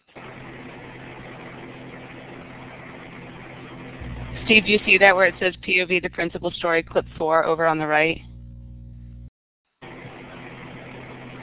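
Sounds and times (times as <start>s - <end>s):
road rumble: 0.1s - 11.4s
car engine humming while driving at an even speed: 0.9s - 9.3s
speech: 4.5s - 8.3s.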